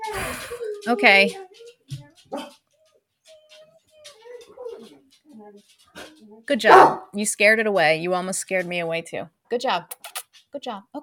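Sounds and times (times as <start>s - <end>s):
speech: 0.4s - 1.4s, 5.5s - 11.0s
dog barks: 2.3s - 2.6s, 6.0s - 7.2s.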